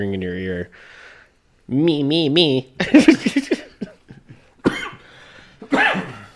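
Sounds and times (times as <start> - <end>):
speech: 0.0 - 1.1, 1.7 - 3.6
laughter: 2.8 - 4.5
person coughing: 3.2 - 6.3.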